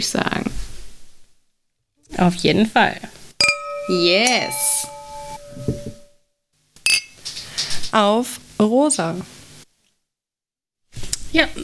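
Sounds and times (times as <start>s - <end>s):
speech: 0.0s - 0.4s, 2.2s - 3.2s, 3.9s - 4.8s, 7.9s - 9.4s, 11.3s - 11.6s
glasses clinking in a toast: 3.4s - 6.1s.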